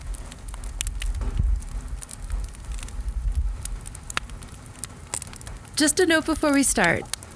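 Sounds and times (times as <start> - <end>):
campfire crackling with sharp pops and snaps: 0.0 - 7.3
steady low rumble: 0.0 - 7.3
speech: 5.8 - 7.2.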